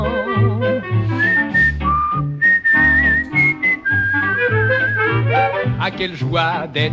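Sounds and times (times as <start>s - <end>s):
steady instrumental accompaniment: 0.0s - 6.9s
man whistling a cheerful tune while shaving: 0.9s - 5.7s
speech: 5.9s - 6.9s.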